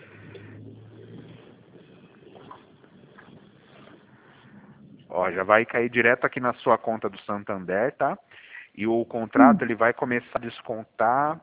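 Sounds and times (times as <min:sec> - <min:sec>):
steady broadband rumble of street traffic: 0:00.0 - 0:05.2
speech: 0:05.1 - 0:11.4.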